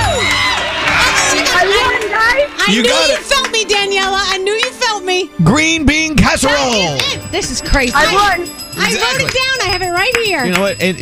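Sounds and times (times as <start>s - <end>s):
several voices screaming and cheering excitedly: 0.0s - 4.4s
speech: 2.7s - 4.6s, 5.2s - 10.9s.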